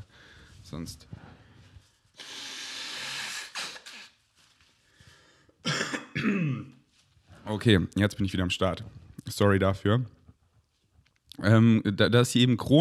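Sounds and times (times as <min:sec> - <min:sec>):
speech: 0:00.7 - 0:01.3, 0:07.5 - 0:10.2, 0:11.4 - 0:12.7
person blowing nose: 0:02.2 - 0:04.3.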